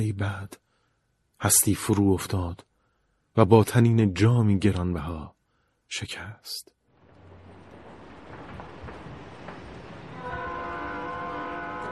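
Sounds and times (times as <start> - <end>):
speech: 0.0 - 0.6, 1.4 - 2.7, 3.4 - 6.7
train rumbling at an old railway station: 6.9 - 11.9
train horn blaring: 9.9 - 11.9.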